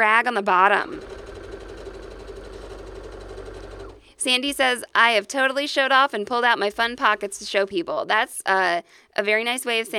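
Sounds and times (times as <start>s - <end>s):
speech: 0.0s - 1.1s, 4.2s - 9.9s
sewing machine stitching: 0.7s - 4.1s.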